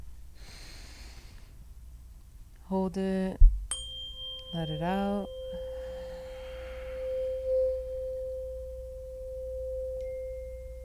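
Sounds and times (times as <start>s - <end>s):
steady low hum: 0.0s - 10.8s
deep breath in during a group breathing exercise: 0.4s - 1.6s, 5.8s - 7.5s
speech: 2.7s - 3.5s, 4.5s - 5.4s.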